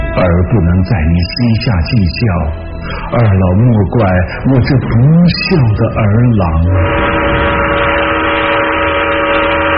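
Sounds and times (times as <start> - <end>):
speech: 0.2 - 7.2
southbound train steam whistle blowing: 6.6 - 9.7.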